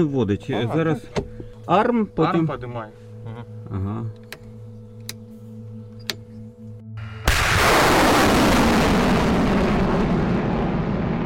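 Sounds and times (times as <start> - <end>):
speech: 0.0 - 4.2
HIMARS rocket launch fired by soldiers: 7.0 - 11.2.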